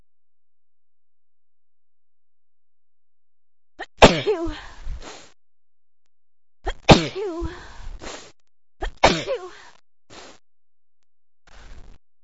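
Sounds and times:
person sneezing forcefully: 0:04.0 - 0:05.2, 0:06.7 - 0:07.5, 0:08.8 - 0:09.5.

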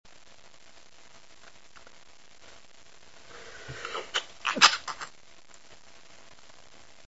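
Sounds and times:
man stifling: 0:03.3 - 0:05.1.

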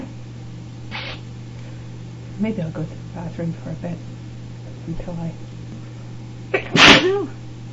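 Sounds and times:
person sneezing from dust on books: 0:00.9 - 0:01.2, 0:06.6 - 0:07.3
speech: 0:02.4 - 0:05.6, 0:06.7 - 0:07.4.

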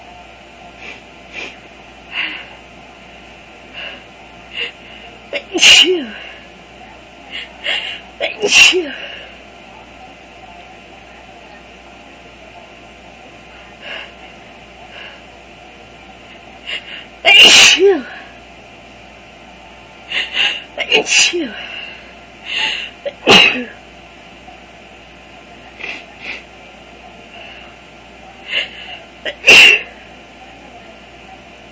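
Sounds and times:
faint breaths: 0:00.7 - 0:05.3, 0:06.0 - 0:08.2, 0:08.9 - 0:09.6, 0:13.3 - 0:15.4, 0:16.2 - 0:17.2, 0:20.0 - 0:20.8, 0:21.4 - 0:23.0, 0:27.2 - 0:29.2
person sneezing from flower allergy: 0:05.4 - 0:06.4, 0:07.7 - 0:09.3, 0:16.7 - 0:18.2, 0:20.1 - 0:21.7, 0:22.6 - 0:23.8, 0:28.5 - 0:30.0.

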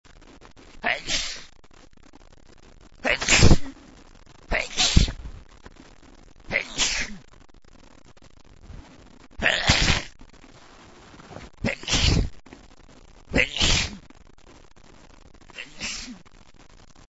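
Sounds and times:
man sneezing: 0:00.8 - 0:01.5, 0:03.0 - 0:03.8, 0:04.5 - 0:05.2, 0:06.5 - 0:07.2, 0:09.4 - 0:10.1, 0:11.6 - 0:12.3, 0:13.3 - 0:14.0, 0:15.6 - 0:16.2.

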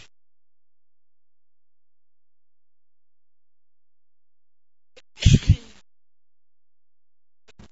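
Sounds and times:
man sneezing: 0:05.2 - 0:05.6.

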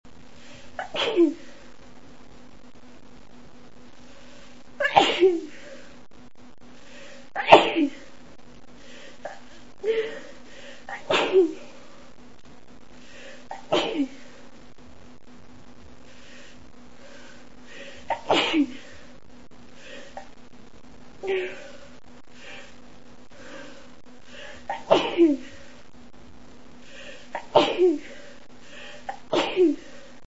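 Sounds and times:
woman sneezing in the morning: 0:00.8 - 0:01.4, 0:04.8 - 0:05.6, 0:07.4 - 0:08.0, 0:10.9 - 0:11.6, 0:13.5 - 0:14.2, 0:18.1 - 0:18.8, 0:24.7 - 0:25.5, 0:27.4 - 0:28.1, 0:29.1 - 0:29.9.

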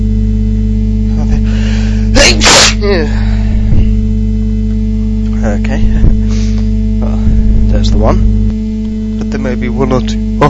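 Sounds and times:
steady low electrical hum: 0:00.0 - 0:10.4
person sneezing: 0:02.2 - 0:03.2
speech: 0:02.9 - 0:03.2, 0:08.0 - 0:08.3, 0:09.4 - 0:10.4.

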